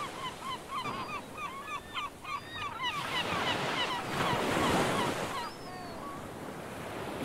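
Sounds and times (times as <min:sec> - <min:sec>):
many seabirds calling in honking cries: 0:00.0 - 0:06.2
surf washing in: 0:03.0 - 0:07.2.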